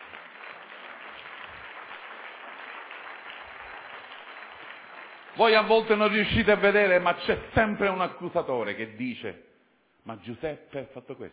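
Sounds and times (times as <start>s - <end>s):
large audience applauding: 0.0s - 6.8s
speech: 5.4s - 11.3s.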